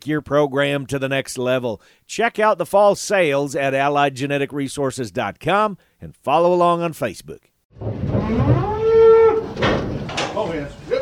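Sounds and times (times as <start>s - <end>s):
speech: 0.0s - 8.7s
clattering as cattle are loaded onto trailers: 7.8s - 10.9s
cow mooing as cattle are loaded onto trailers: 8.1s - 9.6s.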